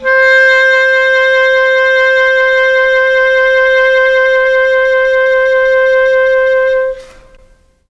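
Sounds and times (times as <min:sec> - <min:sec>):
mellotron clarinet C4 note: 0:00.0 - 0:07.7.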